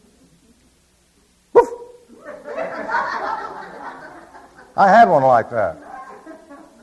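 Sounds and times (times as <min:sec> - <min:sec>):
dog barking: 0:01.6 - 0:02.0
laughter and chuckling from people: 0:02.1 - 0:04.8, 0:05.7 - 0:06.8
speech: 0:04.8 - 0:05.8.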